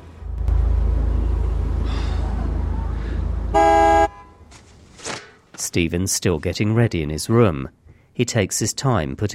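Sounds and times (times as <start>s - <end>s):
low engine rumble: 0.0s - 5.0s
car horn blast: 3.5s - 4.5s
speech: 5.7s - 9.3s.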